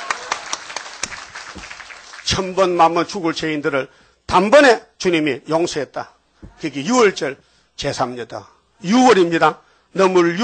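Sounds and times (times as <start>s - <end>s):
church congregation clapping hands in praise: 0.0s - 3.0s
speech: 2.3s - 10.4s.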